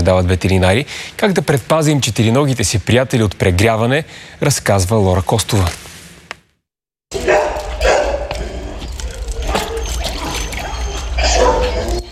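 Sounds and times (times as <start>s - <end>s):
speech: 0.0s - 5.9s
stray dogs at an animal shelter barking: 7.1s - 12.1s
water splashing in pools: 9.0s - 11.3s.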